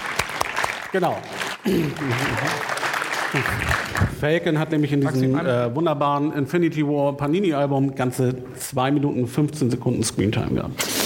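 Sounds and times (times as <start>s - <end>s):
group clapping: 0.0s - 4.6s
speech: 0.9s - 11.0s.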